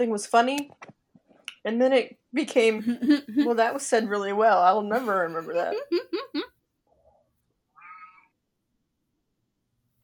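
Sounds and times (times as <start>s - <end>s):
speech: 0.0s - 0.9s, 1.6s - 6.5s
laughter: 4.9s - 6.5s
cat meowing loudly: 7.7s - 8.3s.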